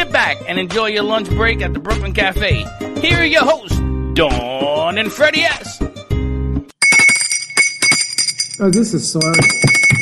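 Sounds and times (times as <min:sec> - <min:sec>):
speech: 0:00.3 - 0:05.9, 0:08.6 - 0:09.9
small bell ringing: 0:06.8 - 0:10.0.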